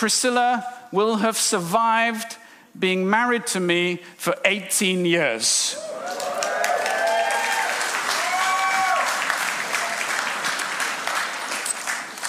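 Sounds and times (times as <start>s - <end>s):
speech: 0.0s - 6.2s
a few voices whooping and cheering: 5.8s - 10.4s
crowd clapping in a dense full round of applause: 5.8s - 12.2s.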